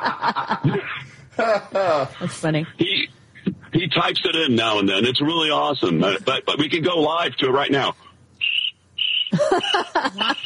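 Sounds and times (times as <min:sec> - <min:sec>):
speech: 0:00.0 - 0:00.9, 0:01.5 - 0:03.1, 0:04.0 - 0:08.0, 0:09.6 - 0:10.4
laughter: 0:00.0 - 0:02.4, 0:09.3 - 0:10.4
crickets chirping: 0:08.4 - 0:10.4.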